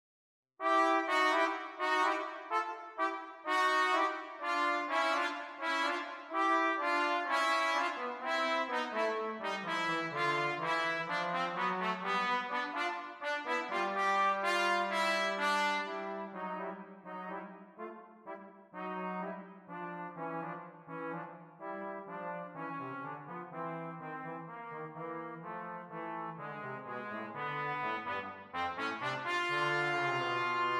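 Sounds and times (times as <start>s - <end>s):
trumpet and trombone duet: 0.6s - 30.7s.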